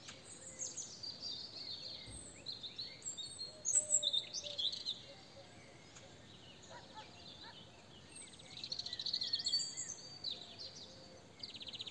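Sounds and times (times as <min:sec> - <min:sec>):
European robin Erithacus rubecula singing: 0:00.0 - 0:11.8.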